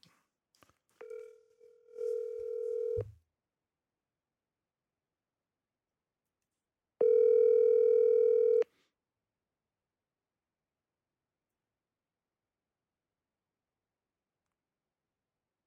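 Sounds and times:
telephone ringback tone of a call being dialed: 1.9s - 3.1s, 7.0s - 8.6s.

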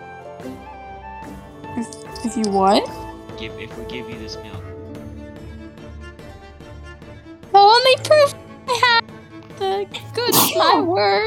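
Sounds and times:
speech: 0.4s - 4.8s, 7.9s - 8.4s, 9.8s - 11.2s
high child-like voice speaking: 1.8s - 3.0s, 7.5s - 11.2s
sharp sneeze: 10.2s - 10.9s.

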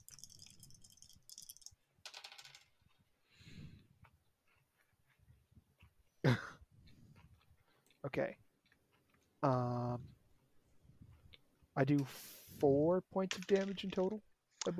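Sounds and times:
dice rattling and clattering: 0.0s - 3.0s, 13.2s - 14.7s
dice landing with a sharp clack: 0.1s - 2.7s, 13.3s - 14.7s
speech: 8.1s - 8.4s, 9.4s - 10.1s, 11.8s - 14.7s.

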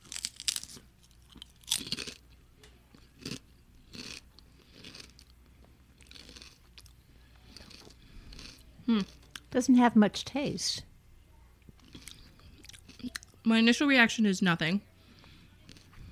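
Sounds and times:
kettle-cooked potato chip bitten and chewed: 0.0s - 2.3s, 2.9s - 5.3s, 6.0s - 9.5s, 11.8s - 13.4s
speech: 8.9s - 10.9s, 13.5s - 14.9s.

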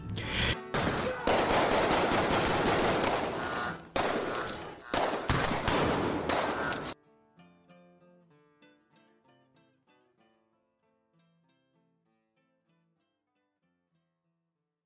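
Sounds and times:
rapid gunfire from armed men: 0.7s - 7.0s.

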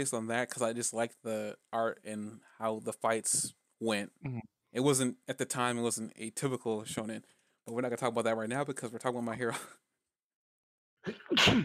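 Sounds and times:
speech: 0.0s - 9.9s, 11.0s - 11.6s
sneeze: 11.1s - 11.6s.

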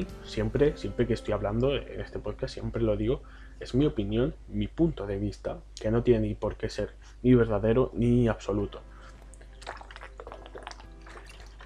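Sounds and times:
speech: 0.0s - 8.9s
water pouring into a glass or cup: 9.0s - 11.6s.

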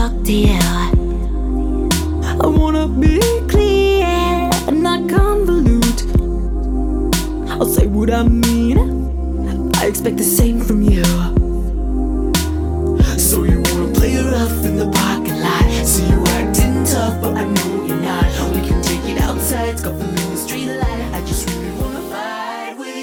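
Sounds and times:
pounding bass hits in hyperpop song: 0.0s - 9.2s, 9.8s - 17.4s, 18.2s - 20.2s, 20.8s - 22.0s
heavily processed, distorted singing in hyperpop song: 0.0s - 23.0s
speech: 0.1s - 0.9s, 8.0s - 9.0s, 9.9s - 11.4s
fast busy hyperpop beat: 1.9s - 3.8s, 7.2s - 9.0s, 9.8s - 11.6s, 12.4s - 22.2s.

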